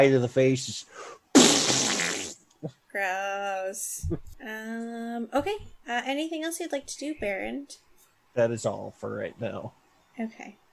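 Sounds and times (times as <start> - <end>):
speech: 0.0 - 1.5, 2.6 - 10.6
voice blowing a raspberry imitating a fart: 1.4 - 2.8.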